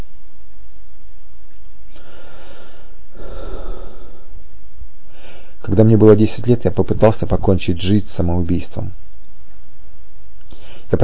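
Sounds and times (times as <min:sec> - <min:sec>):
heavy rough breaths: 0:01.9 - 0:04.4, 0:05.1 - 0:05.6, 0:10.5 - 0:11.0
speech: 0:05.7 - 0:09.0.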